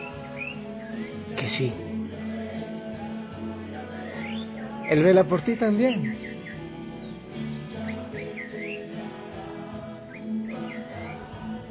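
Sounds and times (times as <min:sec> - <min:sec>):
small caged pet bird chirping: 0:00.0 - 0:01.6, 0:04.0 - 0:09.2, 0:10.0 - 0:11.6
speech: 0:01.0 - 0:01.9, 0:04.9 - 0:06.3.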